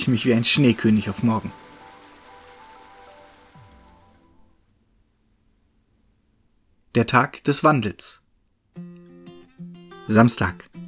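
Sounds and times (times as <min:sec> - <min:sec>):
speech: 0:00.0 - 0:01.6, 0:06.9 - 0:08.2, 0:10.1 - 0:10.8
steady rain on a hard surface: 0:00.0 - 0:04.5.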